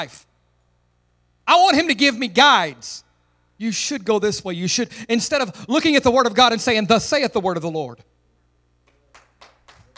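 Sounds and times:
speech: 0.0 - 0.3, 1.5 - 3.0, 3.6 - 8.1
quiet room hum: 0.0 - 9.9
audience member clapping: 8.8 - 9.9.

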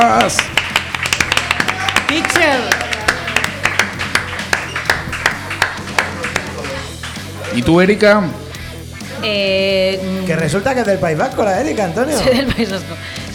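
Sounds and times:
speech: 0.0 - 0.6, 7.6 - 8.4, 9.2 - 13.3
small group applauding: 0.0 - 7.7
laughter: 12.0 - 13.0.

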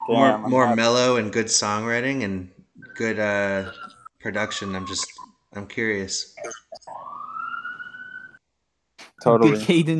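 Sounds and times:
speech: 0.0 - 7.1, 9.2 - 9.9
ambulance siren wailing: 2.8 - 5.3, 6.7 - 8.4.

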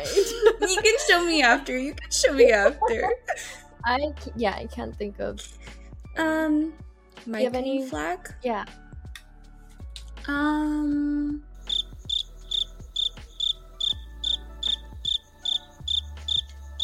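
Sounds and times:
laughter: 0.0 - 1.5, 2.1 - 3.6
speech: 1.1 - 8.8, 10.3 - 11.5
crickets chirping: 11.7 - 16.8.

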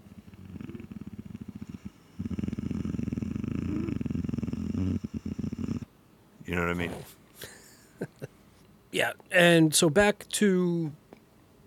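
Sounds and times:
lion-like large creature purring growl: 0.0 - 5.9
speech: 6.5 - 7.5, 8.9 - 11.0.

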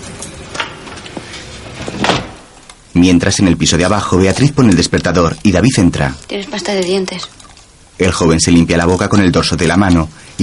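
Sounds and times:
wooden door being opened and closed: 0.0 - 2.7
speech: 3.0 - 7.4, 8.0 - 10.4.

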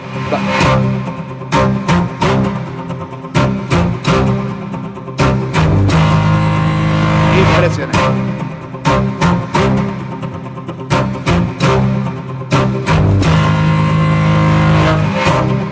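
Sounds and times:
rock instrumental cover played on bowed cellos: 0.0 - 15.7
speech: 0.3 - 1.2.

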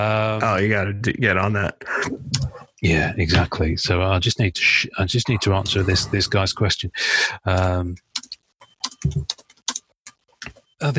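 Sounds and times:
speech: 0.0 - 8.1, 9.0 - 9.4, 10.8 - 10.9
voice murmuring: 5.2 - 6.5
typing on a keyboard: 7.6 - 10.2.

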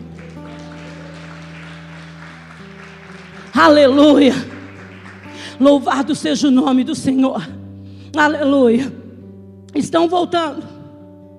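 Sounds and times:
crowd clapping: 0.0 - 6.3
sustained keyboard chords: 0.0 - 8.7
speech: 3.6 - 4.5, 5.6 - 9.0, 9.7 - 10.7.

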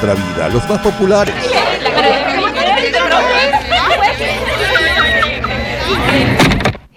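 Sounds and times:
speech: 0.0 - 3.6
dense crowd chattering: 0.0 - 6.9
laughter: 0.5 - 6.4.

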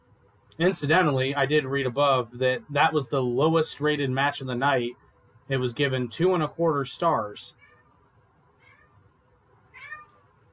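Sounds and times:
speech: 0.6 - 7.6
domestic cat meowing loudly: 8.6 - 9.0, 9.7 - 10.2.

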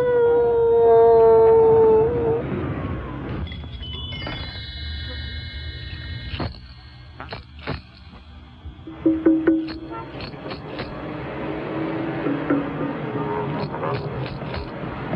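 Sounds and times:
loud drawn-out howl: 0.0 - 3.4, 11.0 - 14.2.

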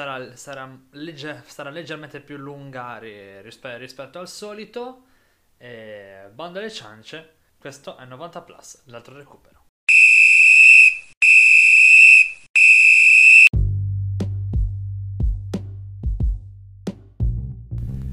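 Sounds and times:
speech: 0.0 - 9.6
referee's whistle blasts: 9.9 - 13.5.

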